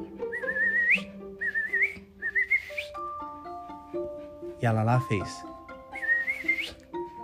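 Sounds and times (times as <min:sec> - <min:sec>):
person whistling imitation of a bird call: 0:00.2 - 0:03.1, 0:05.9 - 0:06.9
speech: 0:04.6 - 0:05.5.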